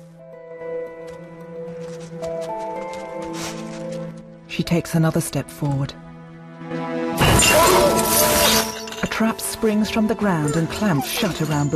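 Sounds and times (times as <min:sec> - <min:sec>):
sustained musical tones: 0:00.0 - 0:11.7
female wolf pawing at loose soil beside a cow carcass: 0:01.8 - 0:04.2
speech: 0:04.6 - 0:06.0, 0:09.2 - 0:11.7.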